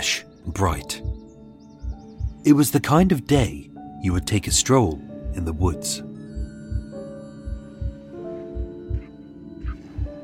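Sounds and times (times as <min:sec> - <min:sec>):
speech: 0:00.1 - 0:01.1, 0:02.4 - 0:06.1
deep heavy heartbeat thudding: 0:00.8 - 0:03.1, 0:04.5 - 0:10.2.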